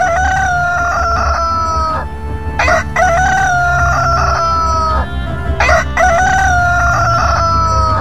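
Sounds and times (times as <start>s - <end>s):
low rumble: 0.0s - 7.9s
rooster crowing: 0.0s - 7.9s.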